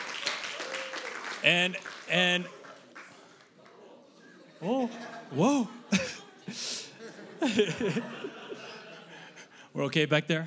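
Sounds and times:
audience applause: 0:00.0 - 0:03.8
speech: 0:01.4 - 0:02.6, 0:04.6 - 0:06.7, 0:07.4 - 0:08.4, 0:09.8 - 0:10.4
laughter: 0:03.8 - 0:09.6.

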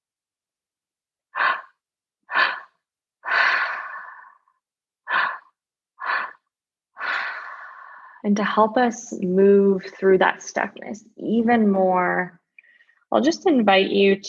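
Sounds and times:
open mouth breathing: 0:01.4 - 0:08.2
speech: 0:08.2 - 0:12.4, 0:13.1 - 0:14.2.

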